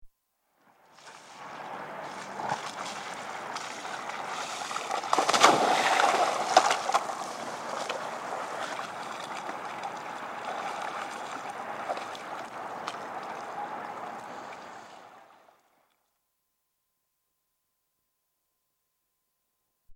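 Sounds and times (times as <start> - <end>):
windsurf board capsizing: 0.9 - 15.5
windsurf mast hitting water: 4.8 - 7.1.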